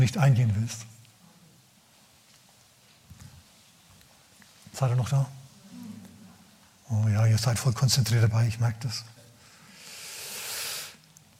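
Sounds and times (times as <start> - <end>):
speech: 0.0 - 0.9, 4.8 - 5.4, 6.9 - 9.1
snake hissing: 9.8 - 11.0.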